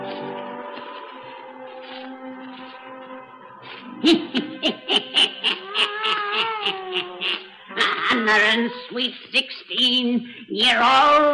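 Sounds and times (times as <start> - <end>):
laughter: 3.6 - 8.4
black cat meowing: 5.9 - 7.4
speech: 8.6 - 11.3.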